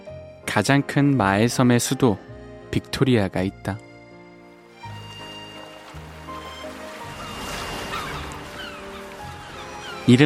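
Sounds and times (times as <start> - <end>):
speech: 0.5 - 3.9
ocean waves washing onto a beach in the Seychelles: 5.1 - 10.2.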